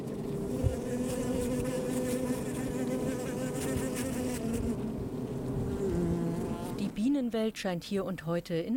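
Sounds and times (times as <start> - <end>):
many honeybees buzzing at a hive entrance: 0.1 - 7.1
speech: 7.3 - 8.7.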